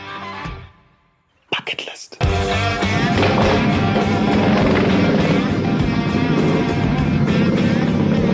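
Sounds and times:
motorbikes riding down a winding dirt road from a mountain: 2.8s - 8.3s.

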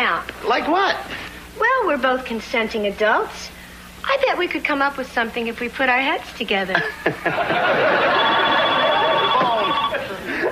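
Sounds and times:
speech: 0.2s - 8.4s
laughter: 6.8s - 10.4s
telephone ringing with a bright electronic tone: 7.4s - 10.2s.

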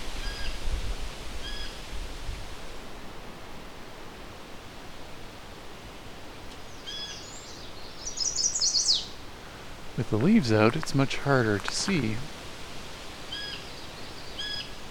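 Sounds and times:
chestnut-sided warbler song: 0.2s - 0.6s, 6.6s - 9.3s, 13.3s - 14.9s
steady broadband noise: 9.9s - 13.1s
speech: 10.0s - 12.4s.

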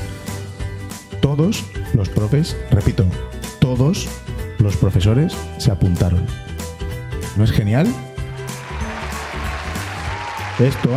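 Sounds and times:
speech: 1.3s - 6.5s, 7.4s - 8.1s, 10.6s - 10.9s
crowd applause: 8.3s - 10.9s
murmur of cheering voices: 8.5s - 10.9s.

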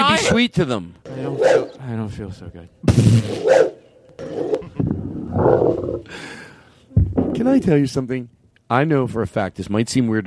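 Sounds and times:
speech: 0.3s - 4.5s, 7.3s - 10.2s
person imitating barking dogs with their voice: 3.3s - 6.1s
person imitating a roaring lion with their voice: 4.2s - 6.1s.

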